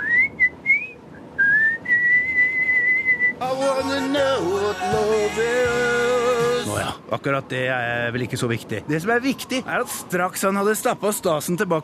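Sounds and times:
man whistling a tune: 0.0s - 3.4s
speech: 3.6s - 5.8s, 6.8s - 11.8s.

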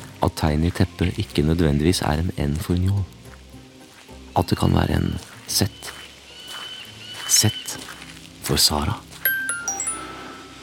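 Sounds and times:
speech: 0.2s - 3.2s, 4.4s - 6.0s, 7.3s - 7.9s, 8.5s - 9.1s
phone message notification chime: 9.2s - 10.6s.

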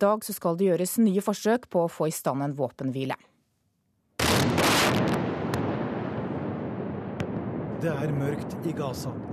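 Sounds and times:
speech: 0.0s - 3.3s, 7.8s - 9.3s
rocket strikes exploding at night: 4.2s - 9.3s.

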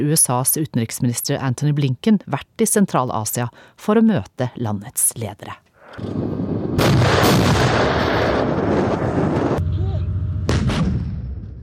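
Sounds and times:
speech: 0.0s - 7.9s
heavy artillery cannons firing: 6.0s - 11.6s.

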